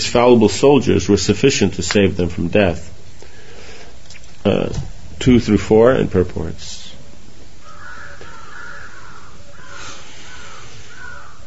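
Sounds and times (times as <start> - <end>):
speech: 0.0 - 3.0, 4.4 - 6.8
steady outdoor hum: 0.0 - 11.4
several crows cawing in harsh drawn-out calls: 7.6 - 11.4.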